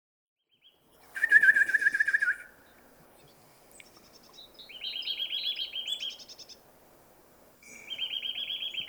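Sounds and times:
Eurasian nuthatch Sitta europaea piping trill: 1.2s - 6.7s, 7.6s - 8.8s.

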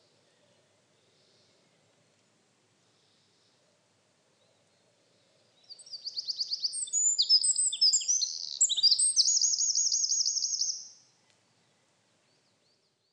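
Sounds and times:
Eurasian wren singing with rattle-like trill: 5.6s - 11.0s.

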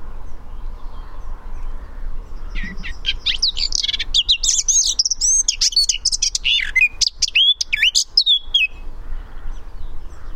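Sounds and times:
Eurasian blackcap Sylvia atricapilla song: 2.3s - 8.9s.

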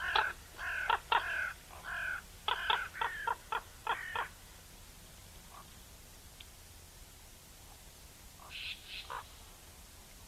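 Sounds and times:
Eurasian magpie Pica pica giving harsh grating chak calls: 0.0s - 4.3s, 8.4s - 9.3s.

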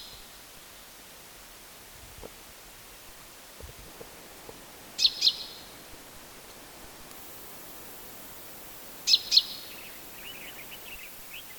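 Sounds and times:
soft low thumps: 3.0s - 7.2s
common chaffinch Fringilla coelebs calls: 3.2s - 11.5s.

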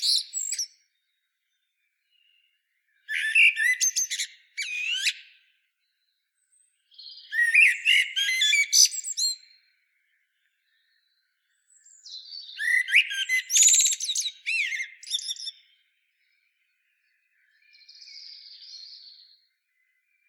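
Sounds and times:
common blackbird Turdus merula warbled whistles ending in high scratchy twitters: 3.1s - 5.3s, 7.3s - 9.3s, 12.6s - 15.6s.

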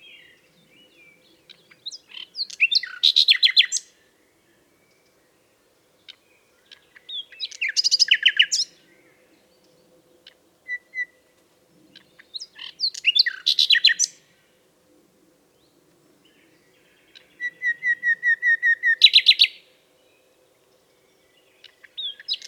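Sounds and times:
Common nightingale Luscinia megarhynchos song with trills: 0.0s - 11.2s, 11.9s - 14.2s, 15.6s - 22.4s.

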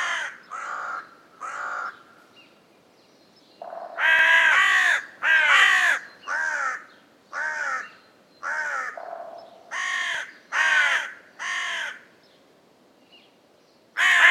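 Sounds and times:
Carrion crow Corvus corone giving harsh, hoarse caws: 0.0s - 2.1s, 3.6s - 12.1s, 14.0s - 14.2s.

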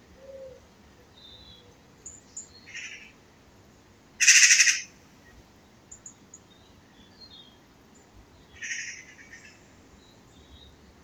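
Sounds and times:
Eurasian magpie chatter, Pica pica: 4.2s - 4.9s.

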